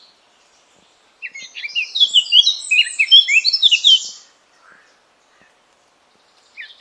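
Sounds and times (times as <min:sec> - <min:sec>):
Eurasian blackcap singing: 0:01.2 - 0:05.5.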